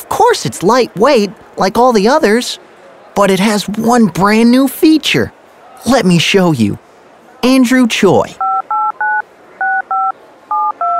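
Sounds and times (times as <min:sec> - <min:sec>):
speech: 0:00.2 - 0:08.4
DTMF tones from a mobile phone automatically dialing a number: 0:08.4 - 0:10.9.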